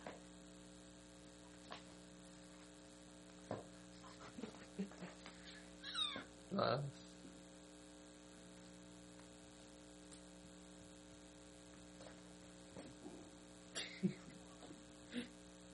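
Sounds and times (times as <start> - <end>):
steady low electrical hum: 0.0 - 15.7
cat meowing in a played video: 5.8 - 6.3.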